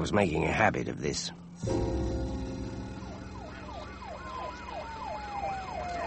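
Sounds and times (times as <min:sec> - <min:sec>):
speech: 0:00.0 - 0:02.3
steady low traffic rumble: 0:00.0 - 0:06.0
steady tone sliding slowly downward: 0:01.6 - 0:05.8
emergency vehicle siren wailing: 0:01.6 - 0:06.0.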